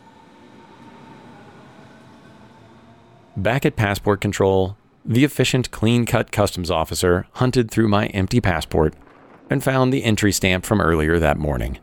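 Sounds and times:
tram rolling along rails: 0:00.0 - 0:03.4
speech: 0:03.4 - 0:11.8.

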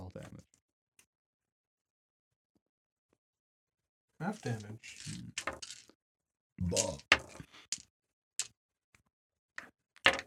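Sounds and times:
speech: 0:04.2 - 0:05.8, 0:06.6 - 0:07.5
handful of plastic dice rolling onto a tabletop: 0:04.4 - 0:05.9, 0:06.7 - 0:07.8, 0:10.1 - 0:10.2.

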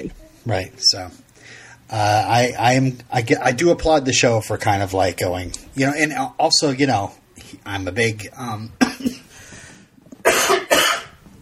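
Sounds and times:
speech: 0:00.0 - 0:09.3
person coughing: 0:08.8 - 0:09.3, 0:10.2 - 0:11.2.

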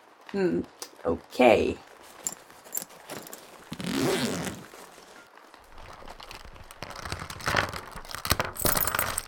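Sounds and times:
speech: 0:00.3 - 0:01.9
rustling crinkling and rummaging as small items are pulled out: 0:01.9 - 0:09.2
zipper rasping open on a bag pocket: 0:02.8 - 0:05.0, 0:05.7 - 0:09.2.

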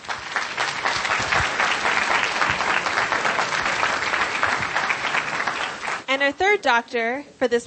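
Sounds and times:
audience applause at a medical program: 0:00.0 - 0:06.1
speech: 0:06.2 - 0:07.6.

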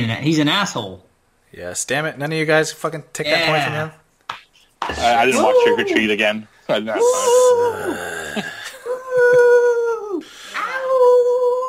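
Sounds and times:
speech: 0:00.0 - 0:04.0, 0:04.8 - 0:08.6
person imitating a howl: 0:05.3 - 0:06.0, 0:07.0 - 0:11.6.

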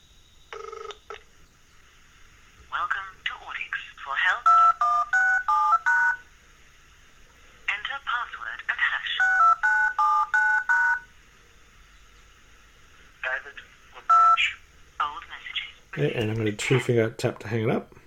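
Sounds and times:
voice speaking over the phone line: 0:02.7 - 0:05.2, 0:07.7 - 0:09.6, 0:13.2 - 0:17.1
DTMF touch-tone dialing beeps auto-dialing into voicemail: 0:04.4 - 0:06.2, 0:09.2 - 0:11.1, 0:14.0 - 0:14.5
speech: 0:16.0 - 0:18.0.

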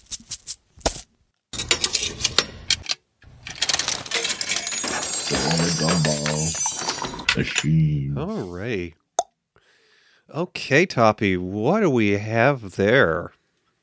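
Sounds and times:
coins tumbling out of a bag of coins: 0:03.4 - 0:07.6
speech: 0:07.4 - 0:09.0, 0:10.3 - 0:13.4.

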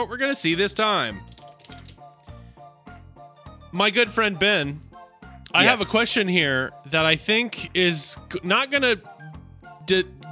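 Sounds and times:
speech: 0:00.0 - 0:01.4, 0:03.7 - 0:04.9, 0:05.5 - 0:09.2, 0:09.9 - 0:10.3
deck of cards being shuffled: 0:01.2 - 0:02.3.

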